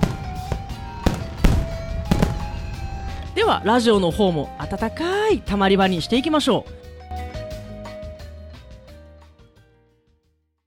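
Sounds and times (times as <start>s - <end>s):
fireworks exploding with booming pops: 0.0s - 4.2s
speech: 3.4s - 6.9s.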